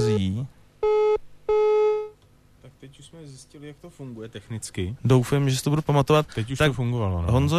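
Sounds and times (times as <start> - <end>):
telephone busy tone after a dropped call: 0.8 - 2.1
speech: 3.0 - 7.5.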